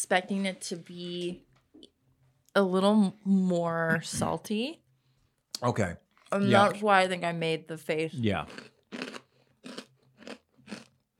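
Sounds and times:
speech: 0:00.0 - 0:01.5, 0:02.6 - 0:04.8, 0:05.6 - 0:08.7
crisp snack being chewed: 0:08.4 - 0:11.1.

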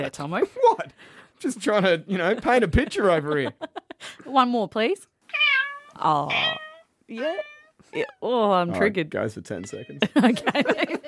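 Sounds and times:
speech: 0:00.0 - 0:05.1, 0:06.0 - 0:11.0
laughter: 0:01.7 - 0:04.0, 0:10.0 - 0:11.0
cat meowing sound effect: 0:05.3 - 0:08.2, 0:09.6 - 0:10.0.

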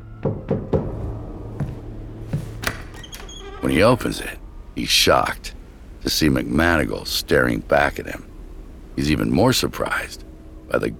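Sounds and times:
low steady hum: 0:00.0 - 0:10.9
quick knocks on a door: 0:00.2 - 0:01.0
soft thumps: 0:00.2 - 0:02.9
speech: 0:03.6 - 0:08.3, 0:09.0 - 0:10.9.

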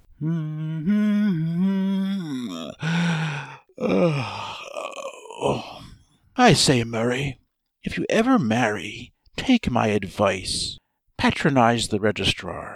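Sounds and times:
man humming a tune in a low voice: 0:00.0 - 0:06.0
man's long breathy yawn: 0:00.1 - 0:06.0
speech: 0:00.2 - 0:00.9, 0:06.4 - 0:12.7.

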